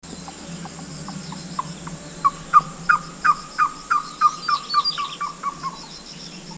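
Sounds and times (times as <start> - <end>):
Lesser Coucal ssp lignator singing in Guangxi: 0.0 - 6.5.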